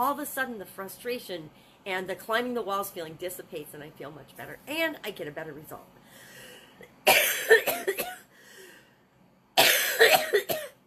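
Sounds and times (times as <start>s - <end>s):
speech: 0.0s - 6.0s
person coughing from a tickly throat: 7.0s - 8.3s, 9.6s - 10.8s.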